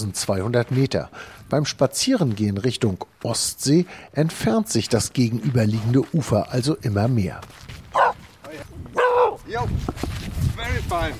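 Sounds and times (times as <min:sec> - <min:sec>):
speech: 0:00.1 - 0:07.8, 0:09.5 - 0:11.1
dog barking: 0:07.9 - 0:08.2, 0:08.9 - 0:09.4.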